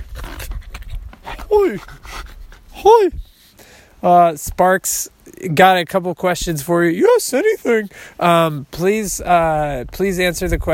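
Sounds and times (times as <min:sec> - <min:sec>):
dog panting: 0:01.2 - 0:02.7
speech: 0:01.5 - 0:03.2, 0:04.0 - 0:10.7.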